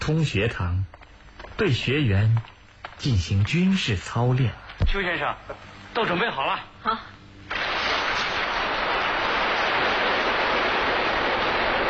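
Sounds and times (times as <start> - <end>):
speech: 0.0 - 1.0, 1.6 - 7.1
heavy rain pouring: 7.9 - 11.8.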